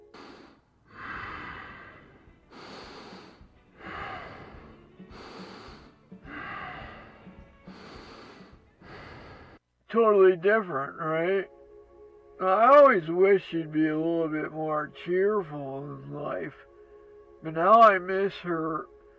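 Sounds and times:
person breathing heavily with a snorting edge: 0:00.0 - 0:09.6
speech: 0:09.9 - 0:11.6, 0:12.4 - 0:16.7, 0:17.4 - 0:18.9.

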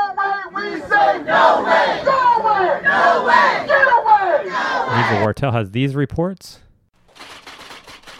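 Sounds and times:
crowd shouting at a town hall meeting: 0:00.0 - 0:05.3
speech: 0:05.0 - 0:06.7.

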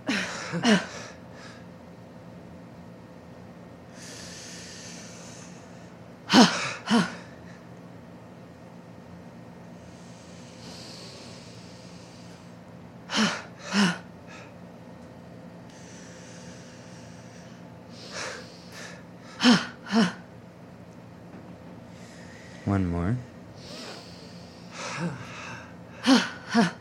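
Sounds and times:
speech: 0:00.5 - 0:01.0
deep breathing in and out during a guided breathing exercise: 0:03.9 - 0:07.6, 0:09.7 - 0:14.6, 0:15.7 - 0:20.1, 0:21.8 - 0:22.8, 0:23.5 - 0:26.7.

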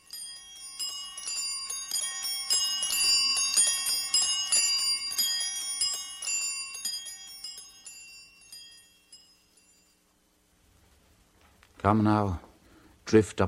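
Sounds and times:
many bells pealing together: 0:00.0 - 0:09.8
speech: 0:11.8 - 0:12.4, 0:13.1 - 0:13.4.

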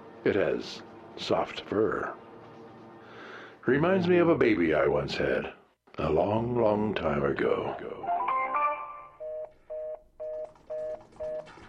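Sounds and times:
speech: 0:00.2 - 0:02.2, 0:03.6 - 0:08.1
telephone line tone after a caller's line drops: 0:09.1 - 0:11.6.

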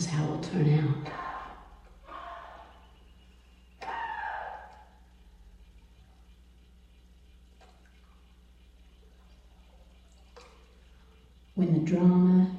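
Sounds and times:
steady low hum: 0:00.0 - 0:12.5
water dripping: 0:00.0 - 0:12.5
speech: 0:00.2 - 0:01.3, 0:11.6 - 0:12.5
water sloshing: 0:07.4 - 0:11.4.

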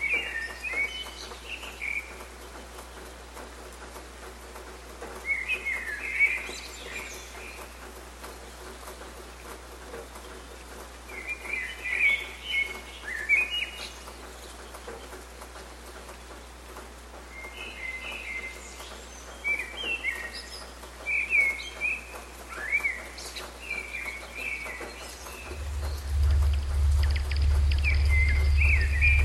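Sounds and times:
birds singing and chirping in a morning dawn chorus: 0:00.0 - 0:04.0, 0:05.1 - 0:16.6, 0:17.2 - 0:29.2
steady hiss of outdoor noise: 0:00.0 - 0:29.2
low loud hum: 0:25.2 - 0:29.2.

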